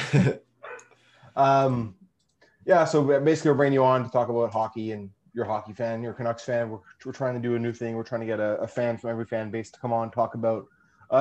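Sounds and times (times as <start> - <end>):
speech: 0.1 - 0.5, 1.4 - 2.0, 2.6 - 11.2
pet dog barking: 0.6 - 0.9.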